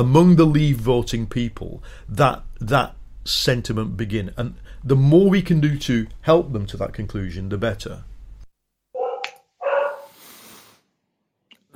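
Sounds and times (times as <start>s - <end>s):
speech: 0.0s - 8.1s
dog barking: 9.0s - 10.2s.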